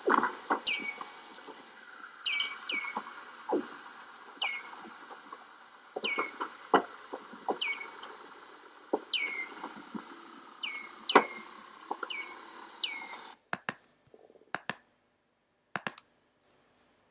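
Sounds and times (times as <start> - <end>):
Antarctic seal descending chirps: 0.0 - 13.4
sharp clicks: 0.0 - 13.8, 15.8 - 16.1.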